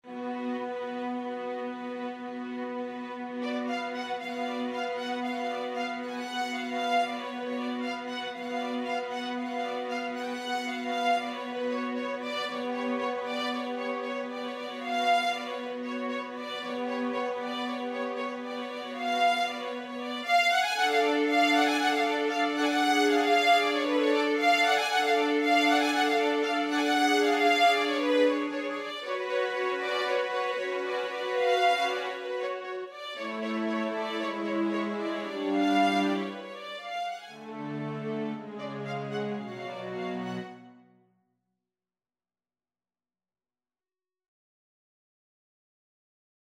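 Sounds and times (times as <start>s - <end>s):
string ensemble playing a Romanian folk dance: 0.0s - 40.8s.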